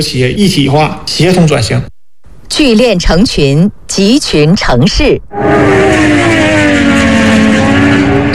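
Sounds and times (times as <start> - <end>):
speech: 0.0 - 6.5
superbike racing motorcycle engines revving with a high-pitched whine: 5.3 - 8.3.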